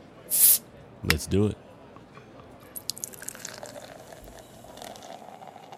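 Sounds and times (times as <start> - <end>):
bottle popping open with fizzing hiss: 0.3 - 0.6
speech: 1.0 - 1.7.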